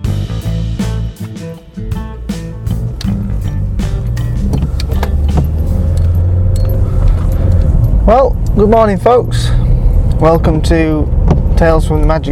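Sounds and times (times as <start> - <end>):
car engine and road rumble on a wet, windy day: 0.1 - 12.3
rattles and clicks in a driving car: 2.7 - 12.3
speech: 8.1 - 9.6, 10.2 - 12.3.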